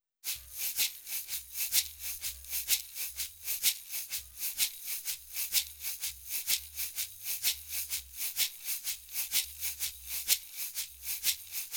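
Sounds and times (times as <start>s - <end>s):
shaker: 0.2s - 11.7s.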